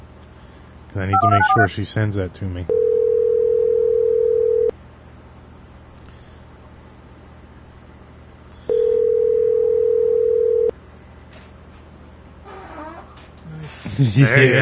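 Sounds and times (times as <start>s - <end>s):
speech: 0.9s - 2.8s, 14.0s - 14.5s
person answering telephone: 1.1s - 1.7s, 2.7s - 4.7s, 8.7s - 10.7s
telephone ringback tone: 1.2s - 1.7s, 2.7s - 4.7s, 8.7s - 10.7s.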